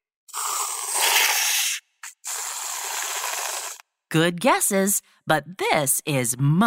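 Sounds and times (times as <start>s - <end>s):
aerosol can of whipped cream spraying onto hot chocolate: 0.3s - 3.8s
speech: 4.1s - 6.6s.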